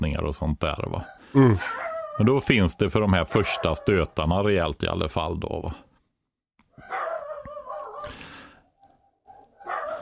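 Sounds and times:
speech: 0.1s - 5.8s
dogs barking and howling at a garbage truck: 0.9s - 2.3s, 3.2s - 4.2s, 6.8s - 10.0s.

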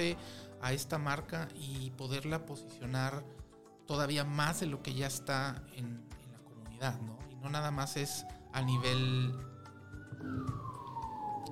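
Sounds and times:
speech: 0.0s - 6.2s, 6.8s - 9.5s, 10.2s - 10.8s
ambulance siren passing: 7.5s - 11.4s.

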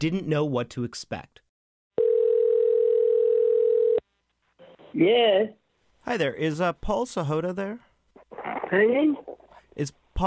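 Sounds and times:
speech: 0.0s - 1.4s, 4.9s - 7.9s, 8.7s - 10.2s
telephone ringing tone while placing a call: 2.0s - 4.0s.

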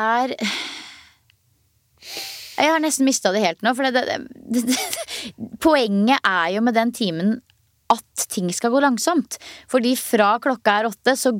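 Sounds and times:
speech: 0.0s - 0.8s, 2.0s - 11.3s
person exhaling and inhaling: 0.4s - 1.2s, 2.0s - 2.6s, 5.1s - 5.5s, 9.4s - 9.7s.

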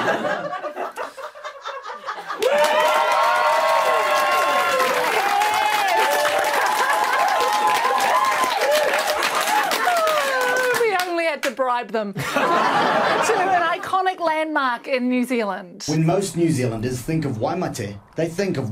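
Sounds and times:
laughter: 0.0s - 2.8s, 12.2s - 14.0s
speech: 0.1s - 0.8s, 11.8s - 18.7s
crowd clapping and cheering: 2.2s - 11.6s
whoops and shouts: 2.4s - 10.8s.

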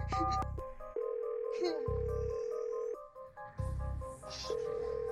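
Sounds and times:
telephone ringing tone of an emergency call over a 2G GSM network: 0.2s - 3.1s, 4.4s - 5.1s.

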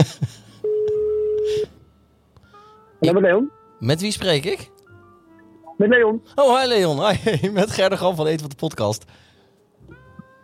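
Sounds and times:
speech: 0.0s - 0.3s, 3.0s - 4.7s, 5.8s - 9.3s
telephone line tone of a call being dialed: 0.6s - 1.7s.

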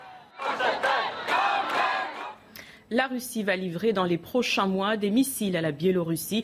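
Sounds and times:
large crowd shouting and chanting in solidarity in a city street: 0.0s - 2.4s
speech: 2.9s - 6.4s.

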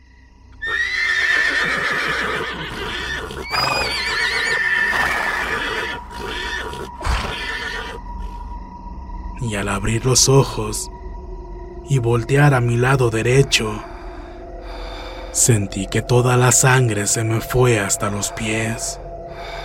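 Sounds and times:
frightened horses neighing and whinnying: 0.6s - 8.4s
speech: 9.5s - 11.0s, 11.9s - 13.9s, 15.4s - 19.1s.

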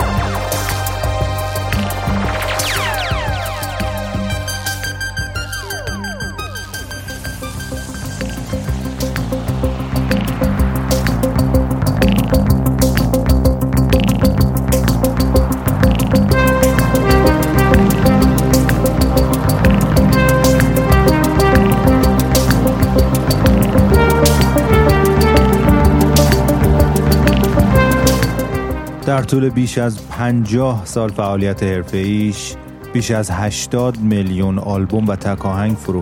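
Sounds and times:
electronic synth music with pulsing bubbly tones over low chords: 0.0s - 29.7s
speech: 29.3s - 36.0s.

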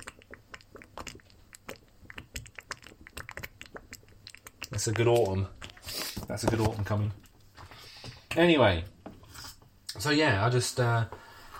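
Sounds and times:
person chewing and biting while eating stew: 0.0s - 8.3s
speech: 4.8s - 5.6s, 6.3s - 7.2s, 8.4s - 8.9s, 10.0s - 11.2s.

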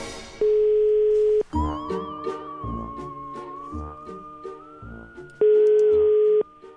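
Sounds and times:
telephone ringing tones on an outgoing call: 0.4s - 1.5s, 5.4s - 6.6s
bright melodic tune: 1.0s - 6.7s.

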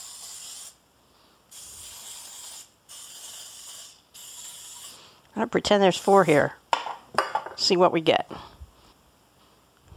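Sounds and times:
cooking spray hissing onto a muffin tin: 0.0s - 0.8s, 1.4s - 6.7s
speech: 5.4s - 6.6s, 7.6s - 8.5s.

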